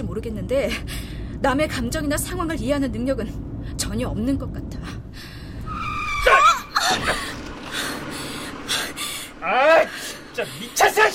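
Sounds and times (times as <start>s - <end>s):
speech: 0.0s - 5.0s, 9.4s - 11.1s
car tires screeching from sudden hard braking: 5.2s - 11.1s.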